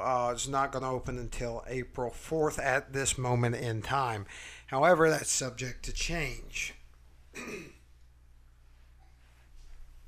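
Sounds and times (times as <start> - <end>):
speech: 0.0 - 6.8, 7.4 - 7.7
quiet room hum: 0.0 - 10.0
thick phlegmy wet cough: 7.4 - 7.8.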